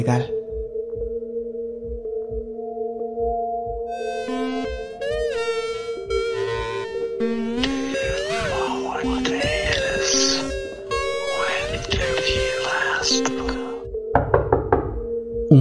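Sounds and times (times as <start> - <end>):
speech: 0.0 - 0.4
sustained droning tonal music: 0.0 - 15.5
sharp knocks on a door: 14.1 - 15.1.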